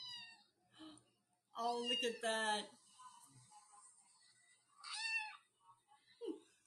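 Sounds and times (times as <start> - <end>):
speech: 1.6 - 2.8
cat meowing: 4.8 - 5.4.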